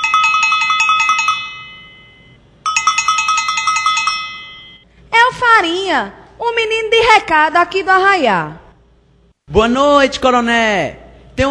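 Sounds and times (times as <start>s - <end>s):
electric doorbell ringing with rapid metallic clanging: 0.0s - 4.8s
speech: 5.9s - 8.6s, 9.5s - 11.4s.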